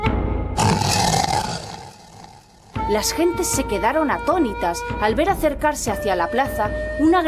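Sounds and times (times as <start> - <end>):
tiger roaring: 0.6 - 2.9
speech: 2.9 - 7.2.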